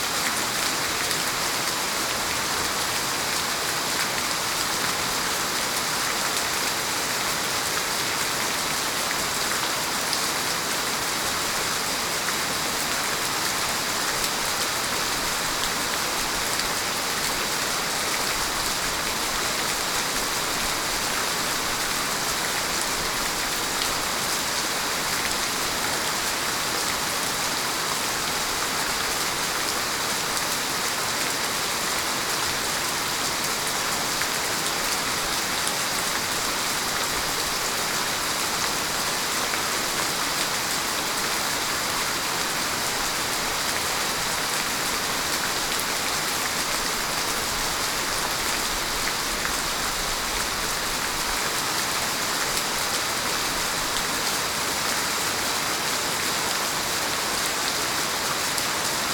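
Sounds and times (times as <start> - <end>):
rain downpour: 0.0 - 59.1.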